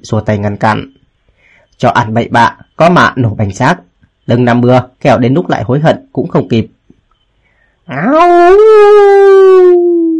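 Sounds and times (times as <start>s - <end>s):
speech: 0.0s - 1.0s, 1.8s - 6.8s, 7.9s - 10.0s
large wolf with pale yellow fur howling: 7.9s - 10.1s.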